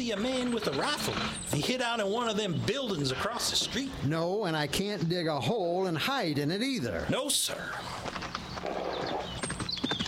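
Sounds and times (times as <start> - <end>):
hoofbeats of a horse galloping past on a town street: 0.0 - 2.9, 7.9 - 10.0
speech: 0.0 - 8.2.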